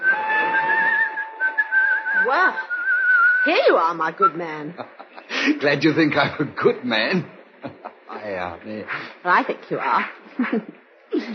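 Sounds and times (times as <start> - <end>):
man whistling a tune while walking through weekend crowds: 0.0 - 3.5
speech: 2.3 - 2.7, 3.4 - 7.4, 8.2 - 11.3
laughter: 4.6 - 6.7, 7.6 - 8.2, 10.3 - 11.3.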